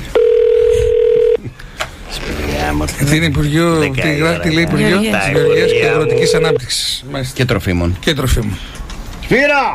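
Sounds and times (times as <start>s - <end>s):
telephone ringback tone while calling a government ministry's switchboard: 0.2s - 1.4s, 5.2s - 6.6s
speech: 3.1s - 8.8s, 9.3s - 9.7s.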